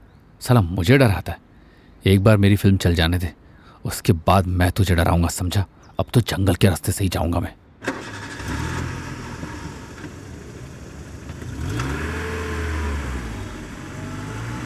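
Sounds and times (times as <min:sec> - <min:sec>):
speech: 0:00.4 - 0:01.4, 0:02.0 - 0:08.6
car engine starting, revving and pulling away on a jungle road: 0:07.8 - 0:14.6.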